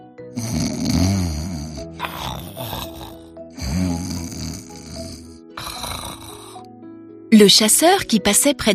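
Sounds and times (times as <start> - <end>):
voice performing wolf snores: 0.3 - 6.7
speech: 7.3 - 8.7.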